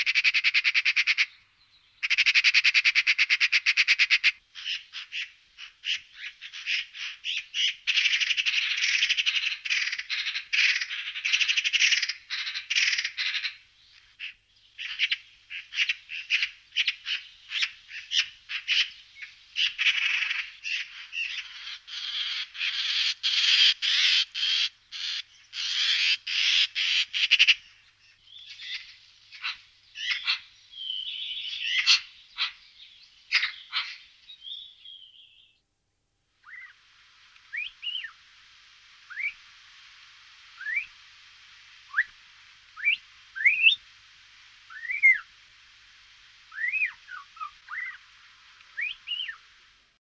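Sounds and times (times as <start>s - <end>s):
Pica pica calling: 0.0s - 1.4s, 2.0s - 27.7s, 28.4s - 32.6s, 33.3s - 34.6s, 36.4s - 36.8s, 37.5s - 38.2s, 41.9s - 42.1s, 42.8s - 43.8s, 44.7s - 45.3s, 46.5s - 48.1s, 48.7s - 49.4s.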